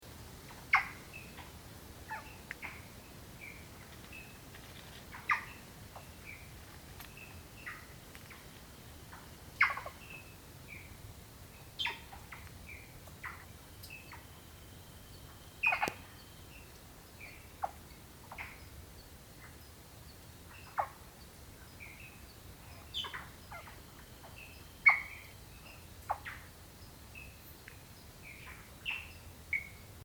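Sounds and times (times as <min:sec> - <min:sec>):
Odorrana supranarina frog calling: 0:00.5 - 0:03.9, 0:05.1 - 0:06.6, 0:07.2 - 0:10.9, 0:11.8 - 0:18.7, 0:20.5 - 0:21.1, 0:21.8 - 0:26.5.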